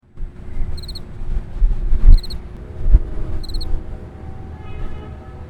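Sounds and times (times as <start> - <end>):
insect sounds in nature: 0.7 - 1.1, 2.0 - 2.5, 3.4 - 3.8.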